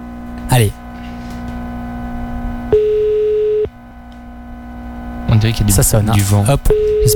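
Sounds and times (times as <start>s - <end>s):
low hum: 0.0s - 7.1s
speech: 0.5s - 0.8s, 5.4s - 7.1s
telephone beep during a call: 2.7s - 3.7s, 6.7s - 7.1s.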